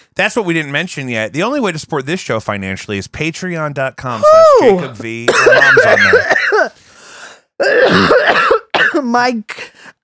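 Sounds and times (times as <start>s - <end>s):
speech: 0.2s - 6.8s, 7.6s - 9.6s
throat clearing and coughing into a microphone: 5.3s - 6.8s, 7.6s - 9.0s.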